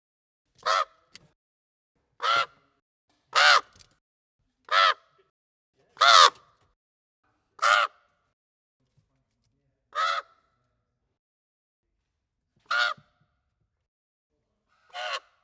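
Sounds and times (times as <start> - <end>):
common raven cawing: 0.6 - 1.0, 2.2 - 2.6, 3.4 - 3.8, 4.7 - 5.0, 6.0 - 6.4, 7.6 - 8.0, 10.0 - 10.4, 12.7 - 13.0.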